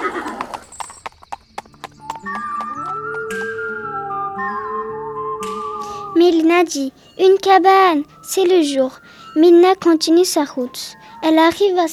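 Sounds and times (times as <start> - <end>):
horse hooves clip-clopping while retreating: 0.0 - 3.8
speech: 6.2 - 11.9.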